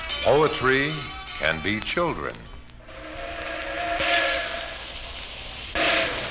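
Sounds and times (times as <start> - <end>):
speech: 0.2 - 2.5
faint whistle-like tones: 2.9 - 5.0
steam train going by: 2.9 - 6.2.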